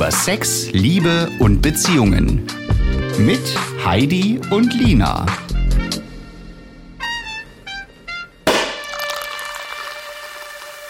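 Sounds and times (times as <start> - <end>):
speech: 0.0 - 2.6, 3.2 - 5.4
German sparkling wine cork popping: 8.5 - 10.8.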